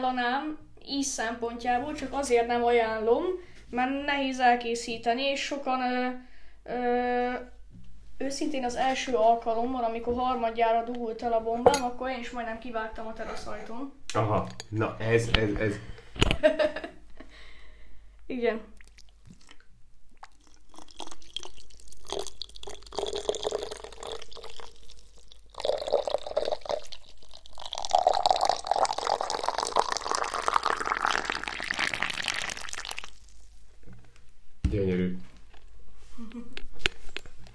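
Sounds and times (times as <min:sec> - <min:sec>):
speech: 0:00.0 - 0:07.6, 0:08.2 - 0:17.0, 0:18.3 - 0:18.7
water pouring from a height into a huge mate gourd: 0:18.8 - 0:33.6.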